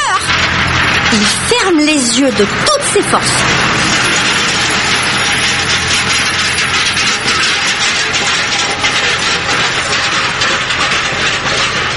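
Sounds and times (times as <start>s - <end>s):
tractor roaring past with a rattling mechanical rumble: 0.2s - 11.9s
speech: 1.1s - 3.6s.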